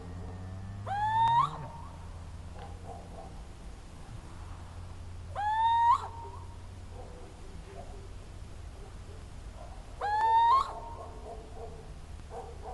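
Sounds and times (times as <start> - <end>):
low hum: 0.0 - 9.8
little owl territorial mewing hoots: 0.8 - 2.0, 5.3 - 6.6, 10.0 - 11.0.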